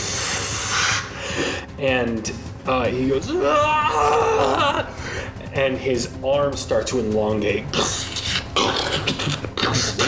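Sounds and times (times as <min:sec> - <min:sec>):
voice imitating steam billowing off a mask: 0:00.0 - 0:01.6, 0:07.7 - 0:10.0
speech: 0:01.8 - 0:05.0, 0:05.6 - 0:08.0.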